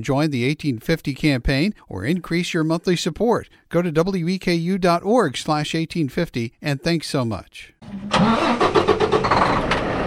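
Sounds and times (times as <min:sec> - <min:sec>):
speech: 0:00.0 - 0:08.6
75-foot truck engine starting: 0:07.8 - 0:10.0.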